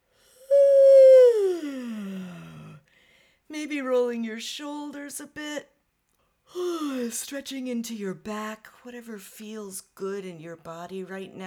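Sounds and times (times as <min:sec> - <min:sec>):
long voiced yawn during a stretch: 0:00.5 - 0:02.8
speech: 0:03.6 - 0:05.7, 0:06.5 - 0:11.4.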